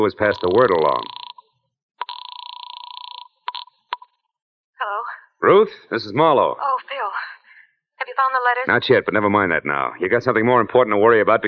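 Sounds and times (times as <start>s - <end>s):
speech: 0.0s - 1.2s, 5.4s - 7.0s, 8.2s - 11.4s
telephone bell ringing with a rapid metallic trill: 0.4s - 1.4s, 2.0s - 3.7s.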